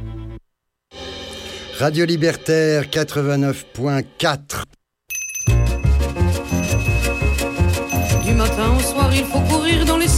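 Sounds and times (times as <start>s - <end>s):
speech: 1.8s - 4.8s
small summoning bell ringing: 5.1s - 9.1s.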